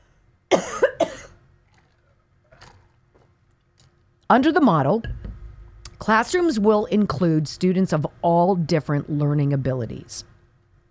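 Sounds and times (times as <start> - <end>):
person coughing after taking a sip: 0.5 - 1.4
speech: 4.3 - 5.2, 6.0 - 10.3.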